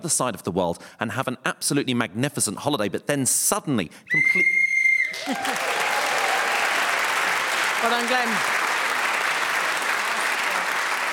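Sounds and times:
speech: 0.0 - 5.7, 7.8 - 8.6
shrill whistle blast ending a round of a game: 4.1 - 5.2
audience applauding: 5.0 - 11.1.

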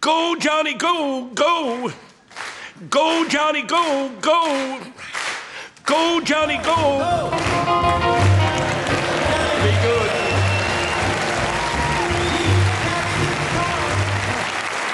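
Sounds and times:
speech: 0.0 - 2.1, 2.8 - 5.2, 5.9 - 8.4
audience applause after a live song performance: 6.5 - 14.9
crowd murmur: 7.0 - 14.6.

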